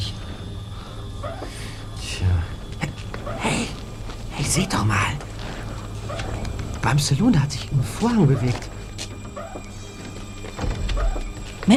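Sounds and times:
low rumble: 0.0s - 11.7s
door creaking open with squealing hinges: 3.0s - 11.7s
speech: 4.5s - 5.3s, 6.8s - 8.7s.

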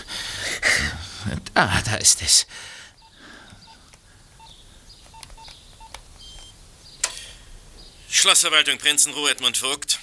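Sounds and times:
faint hiss: 0.0s - 10.0s
speech: 1.2s - 2.8s, 8.2s - 10.0s
mobile phone keypad beeps while dialing: 4.4s - 6.6s.

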